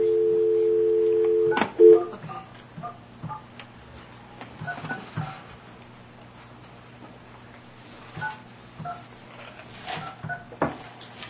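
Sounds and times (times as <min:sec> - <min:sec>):
telephone dial tone: 0:00.0 - 0:02.1
low hum: 0:00.0 - 0:11.2.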